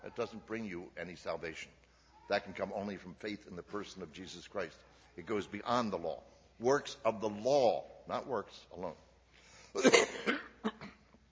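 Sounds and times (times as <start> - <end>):
speech: 0.0 - 9.1, 9.8 - 10.4
person coughing from a pollen allergy: 9.8 - 11.1.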